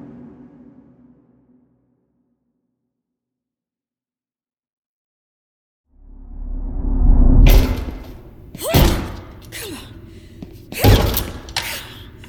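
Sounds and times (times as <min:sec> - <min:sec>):
heavy thuds against a stuck classroom door: 0:07.5 - 0:09.6, 0:10.4 - 0:11.6
faint straining breaths: 0:08.3 - 0:12.2.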